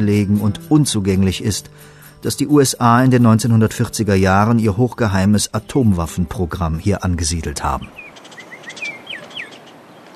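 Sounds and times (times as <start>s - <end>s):
speech: 0.0s - 8.1s
birds chirping beside a remote mountain road in New Mexico: 7.1s - 10.1s.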